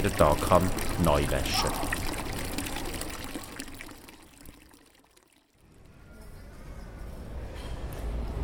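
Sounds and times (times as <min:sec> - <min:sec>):
speech: 0:00.0 - 0:01.9
water splashing from a town fountain: 0:00.0 - 0:05.5.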